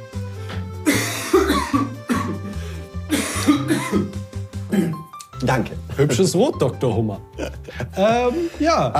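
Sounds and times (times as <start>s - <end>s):
person coughing: 0.8s - 2.5s, 3.1s - 5.1s
speech: 5.5s - 7.3s, 8.0s - 8.9s.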